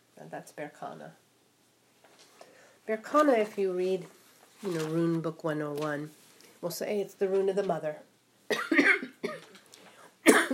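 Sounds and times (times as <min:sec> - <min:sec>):
speech: 0:00.3 - 0:01.3, 0:02.9 - 0:08.8
person coughing: 0:08.5 - 0:09.6, 0:10.2 - 0:10.5.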